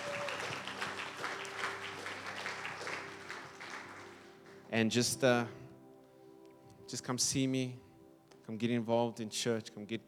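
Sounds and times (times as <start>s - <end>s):
audience applauding: 0.0s - 4.7s
speech: 4.7s - 5.6s, 6.9s - 7.9s, 8.5s - 10.0s.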